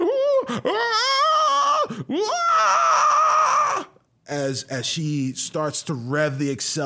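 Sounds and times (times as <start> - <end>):
human voice imitating the screeching of a tortured soul: 0.0 - 4.0
speech: 0.5 - 1.2, 4.3 - 6.8.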